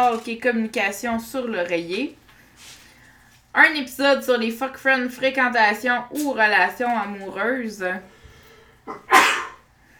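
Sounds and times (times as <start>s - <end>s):
speech: 0.0s - 2.8s, 3.6s - 8.1s, 8.8s - 9.3s
person sneezing: 8.9s - 9.7s.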